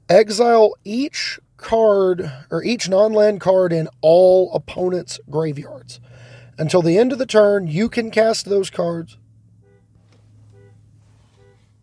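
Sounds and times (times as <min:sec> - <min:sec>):
steady low hum: 0:00.0 - 0:11.8
speech: 0:00.1 - 0:09.2
car alarm repeating a short harmonic honking tone: 0:09.5 - 0:11.8.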